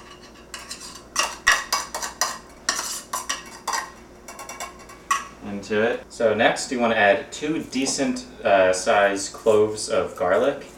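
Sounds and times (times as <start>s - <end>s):
spoon scraping and clinking against a metal can of drained clams: 0.0s - 5.2s
speech: 5.6s - 10.7s.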